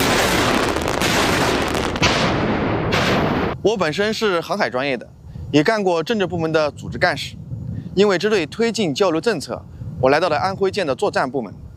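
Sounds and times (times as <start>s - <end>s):
naval live-fire weapons shooting at sea during a warship exercise: 0.0s - 3.6s
speech: 3.6s - 7.4s, 8.0s - 11.6s.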